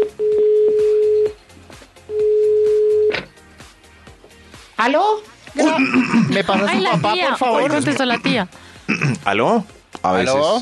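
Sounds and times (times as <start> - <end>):
telephone ringback tone on a long-distance call: 0.0 - 1.4, 2.1 - 3.2
speech: 4.8 - 10.6
laughter: 5.6 - 8.5.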